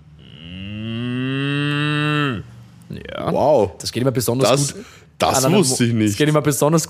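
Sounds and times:
person imitating a cow mooing: 0:00.1 - 0:02.6
speech: 0:03.3 - 0:06.8.

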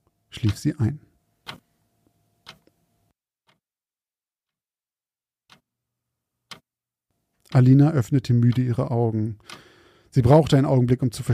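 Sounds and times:
wall clock ticking softly: 0:00.4 - 0:00.8, 0:01.4 - 0:01.8, 0:02.4 - 0:02.7, 0:05.5 - 0:05.7, 0:06.4 - 0:06.7, 0:07.4 - 0:11.3
speech: 0:00.4 - 0:01.1, 0:07.5 - 0:11.3.

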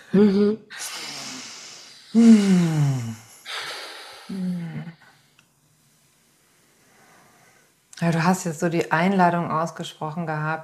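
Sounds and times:
slow deep breaths with sighing exhales: 0:00.0 - 0:05.4, 0:06.4 - 0:07.8
speech: 0:00.1 - 0:00.8, 0:02.1 - 0:03.2, 0:08.0 - 0:10.6.

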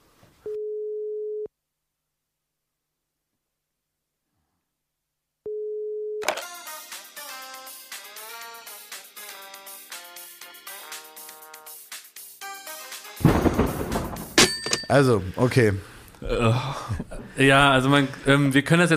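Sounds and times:
telephone dial tone: 0:05.5 - 0:06.4
loud music with crashing ending: 0:06.6 - 0:14.2
speech: 0:14.9 - 0:18.9.

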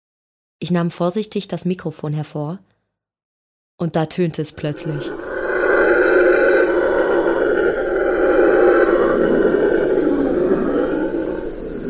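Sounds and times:
speech: 0:00.6 - 0:02.7, 0:03.8 - 0:05.2
red howler monkey roaring: 0:04.6 - 0:11.8.

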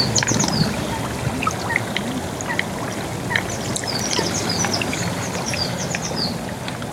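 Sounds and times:
small birds chirping faintly: 0:00.0 - 0:01.9, 0:03.3 - 0:06.4
carbon dioxide bubbling through water at volcanic gas vents: 0:00.0 - 0:06.9.

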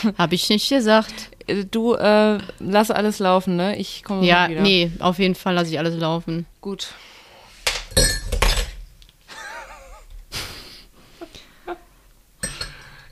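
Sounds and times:
speech: 0:00.0 - 0:07.1
knocks and rattles as things settle: 0:07.8 - 0:08.8
sharp glassy clatter and clinking of something knocked over: 0:07.9 - 0:08.8, 0:12.4 - 0:13.0
laughter: 0:09.3 - 0:11.9.

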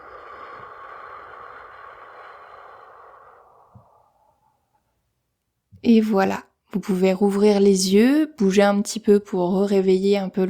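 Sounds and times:
slow soft exhale through the mouth during a relaxation breathing exercise: 0:00.0 - 0:04.9
speech: 0:05.8 - 0:10.4.

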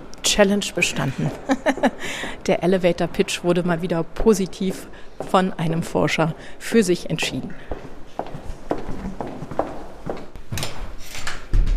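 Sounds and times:
speech: 0:00.4 - 0:07.8
laughter: 0:01.0 - 0:02.0
footsteps on a hard floor: 0:04.5 - 0:05.8, 0:07.6 - 0:11.0.

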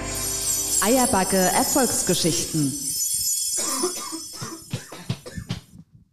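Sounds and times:
speech: 0:01.0 - 0:02.9
man coughing: 0:03.6 - 0:05.7.

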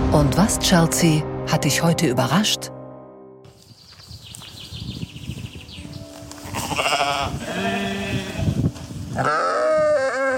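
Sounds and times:
speech: 0:00.1 - 0:02.8
sheep bleating: 0:06.4 - 0:10.3.

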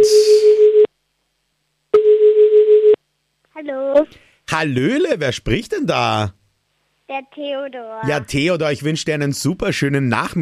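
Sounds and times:
loud steady mid-pitched telephone line tone for an outgoing call: 0:00.0 - 0:01.0, 0:01.9 - 0:03.1
speech: 0:04.1 - 0:06.4, 0:07.1 - 0:10.4.

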